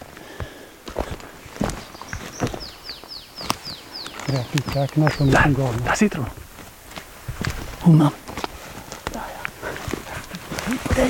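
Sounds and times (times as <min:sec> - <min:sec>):
footsteps walking through a forest in wheel ruts of a forwarder or harvester: 0:00.0 - 0:11.0
bird chirps: 0:01.6 - 0:06.3
speech: 0:04.3 - 0:06.4, 0:07.8 - 0:08.2.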